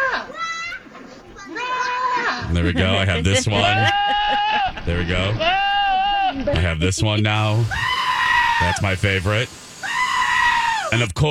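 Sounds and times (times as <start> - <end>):
laughter: 2.1 - 5.6, 6.2 - 7.8
speech: 2.5 - 5.7, 6.3 - 9.6, 10.9 - 11.3
goat bleating: 3.4 - 6.6, 7.4 - 8.9, 9.8 - 11.0.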